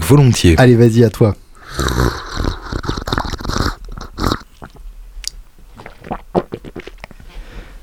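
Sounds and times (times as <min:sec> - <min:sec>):
speech: 0:00.1 - 0:02.1
wet gulping and swallowing made with the mouth: 0:01.6 - 0:07.2
soft mouth clicks and smacks: 0:01.6 - 0:07.3.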